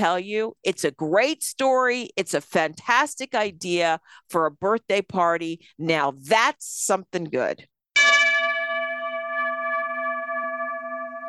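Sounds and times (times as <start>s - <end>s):
speech: 0.0s - 7.7s
bell ringing with a bright clear strike: 8.0s - 11.2s.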